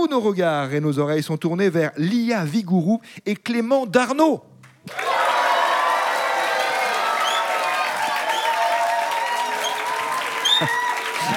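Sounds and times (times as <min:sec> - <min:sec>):
speech: 0:00.0 - 0:05.2
crowd applauding: 0:04.9 - 0:11.3.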